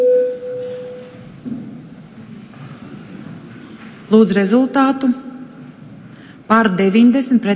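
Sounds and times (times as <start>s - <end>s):
parliament voting signal electronic bell tone: 0.0s - 1.2s
faint room murmur: 0.6s - 6.7s
speech: 4.1s - 5.2s, 6.5s - 7.5s.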